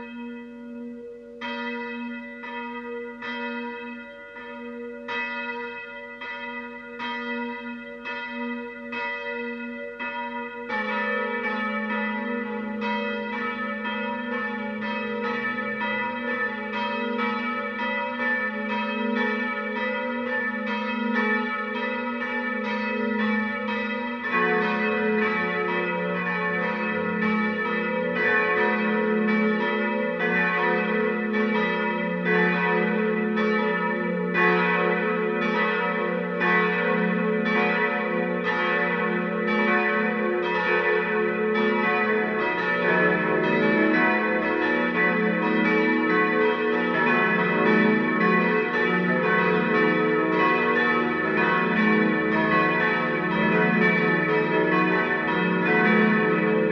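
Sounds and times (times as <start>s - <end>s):
bells ringing together tuned E F sharp A B: 1.1s - 56.6s.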